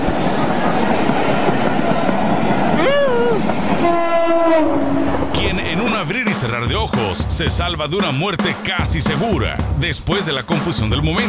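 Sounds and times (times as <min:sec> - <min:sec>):
fast modern train rushing past: 0:00.0 - 0:11.2
fast modern train horn: 0:03.8 - 0:05.5
speech: 0:06.4 - 0:11.2.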